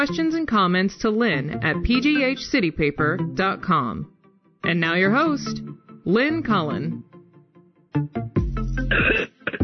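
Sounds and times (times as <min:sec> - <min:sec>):
speech: 0:00.0 - 0:07.1, 0:07.9 - 0:09.3
person clearing throat harshly: 0:08.8 - 0:09.6
person coughing: 0:08.9 - 0:09.6.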